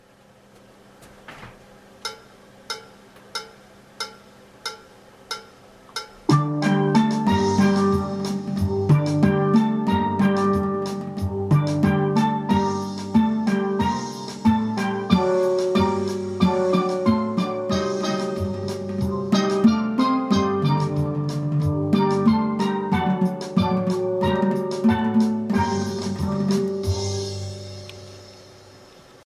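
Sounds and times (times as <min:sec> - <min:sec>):
steel band: 0:02.1 - 0:29.0
guitar three-voice harmony: 0:06.3 - 0:28.5
bass: 0:06.3 - 0:28.9.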